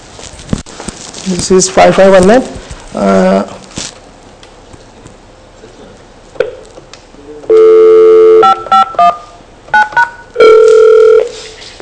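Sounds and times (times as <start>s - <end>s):
speech: 1.2s - 3.6s
desk phone dial tone: 7.5s - 11.3s
desk phone keypad beeps: 7.5s - 11.3s.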